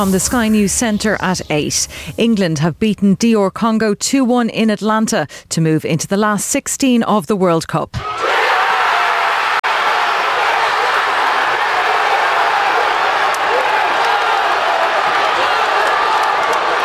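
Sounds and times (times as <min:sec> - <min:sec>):
speech: 0:00.0 - 0:08.5
football supporters cheering and shouting after a winning World Cup goal: 0:08.0 - 0:16.8.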